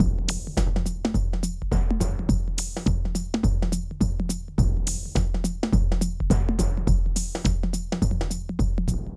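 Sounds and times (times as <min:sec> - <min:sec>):
musical groove: 0:00.0 - 0:09.1.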